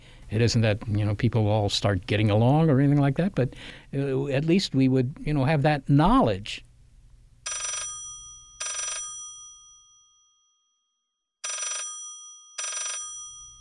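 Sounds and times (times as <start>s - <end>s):
speech: 0.3s - 6.7s
old-style telephone bell ringing: 7.5s - 10.6s, 11.4s - 13.5s.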